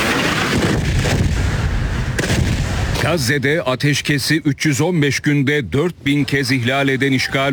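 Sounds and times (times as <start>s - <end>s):
explosions from an attack on displacement tents: 0.0s - 3.4s
speech: 3.0s - 7.5s.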